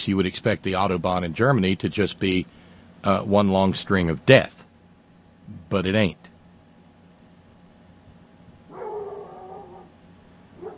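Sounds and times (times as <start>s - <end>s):
speech: 0.0s - 4.6s, 5.5s - 6.3s
dog outside whining bark-howl: 8.7s - 10.0s, 10.6s - 10.7s.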